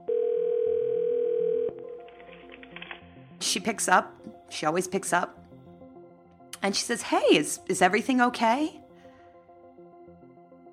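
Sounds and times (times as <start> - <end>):
phone line ringing during a phone call: 0.0 - 2.0
speech: 3.4 - 5.4, 6.6 - 8.8.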